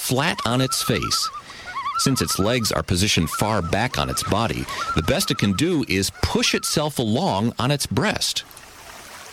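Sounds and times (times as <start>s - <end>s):
ruddy duck calling: 0.0s - 7.1s
speech: 0.1s - 8.6s.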